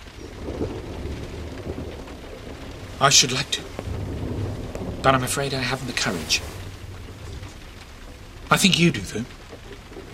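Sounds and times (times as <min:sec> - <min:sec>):
heavy rain pouring down outside: 0:00.0 - 0:10.1
speech: 0:03.0 - 0:03.7, 0:05.0 - 0:06.5, 0:08.5 - 0:09.4.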